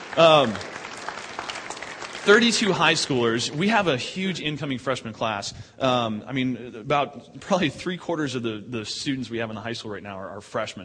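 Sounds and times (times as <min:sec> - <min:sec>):
audience applause: 0:00.0 - 0:03.8
speech: 0:00.2 - 0:00.8, 0:02.2 - 0:10.8.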